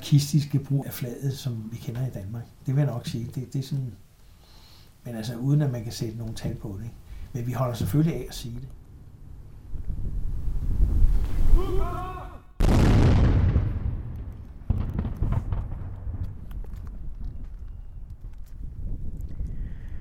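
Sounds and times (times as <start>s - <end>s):
faint harbor ambience: 0.0s - 12.8s, 13.8s - 19.9s
speech: 0.1s - 4.1s, 5.0s - 8.8s, 11.6s - 12.2s
wind noise: 6.3s - 12.0s, 12.6s - 19.9s
ceremonial cannon salute fired with blank powder across open water: 12.6s - 16.4s.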